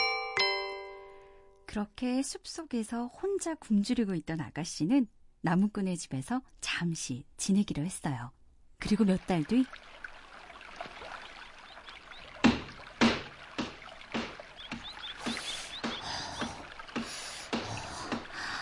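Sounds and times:
speech: 1.7 - 9.9
water sloshing and splashing from laundry washed by hand in a stream: 8.9 - 18.6.

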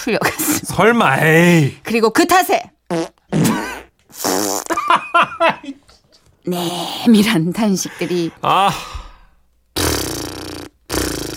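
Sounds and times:
speech: 0.0 - 3.1, 5.2 - 5.8, 6.4 - 9.0
fart sounds from members of a yoga class: 2.9 - 4.8, 9.8 - 11.3.

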